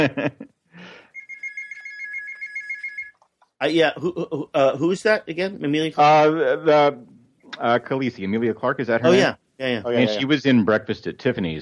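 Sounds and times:
laughter: 0.0 - 0.4, 3.6 - 7.0, 7.6 - 9.3, 9.9 - 11.4
speech: 0.0 - 1.0, 3.6 - 11.6
mobile phone ringing with a bright pulsing electronic tone: 1.1 - 3.1.

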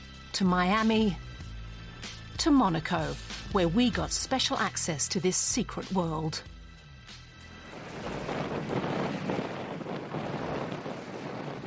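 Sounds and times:
speech: 0.4 - 1.2, 2.4 - 6.6
wind rushing through the huge sails of a large sailing yacht: 7.6 - 11.6.

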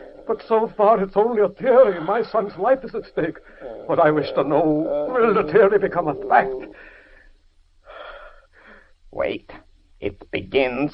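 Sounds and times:
speech: 0.3 - 6.8, 9.2 - 10.9
man breathing heavily with wheezy rasping breaths: 3.4 - 3.9, 6.6 - 9.0.

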